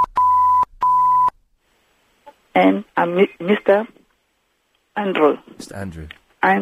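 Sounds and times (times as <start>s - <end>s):
censor bleep over a phone number: 0.0s - 1.4s
speech: 2.6s - 4.0s, 5.0s - 6.6s.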